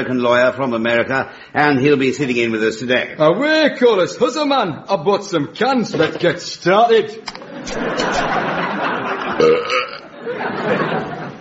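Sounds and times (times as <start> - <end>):
speech: 0.0 - 8.5
laughter: 7.3 - 11.4
loud gurgling belch: 9.4 - 10.1.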